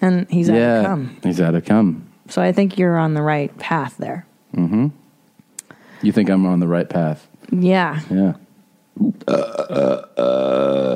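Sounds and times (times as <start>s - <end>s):
speech: 0.0s - 5.0s, 6.0s - 8.4s, 9.0s - 10.9s
loud drawn-out belching: 9.1s - 10.9s.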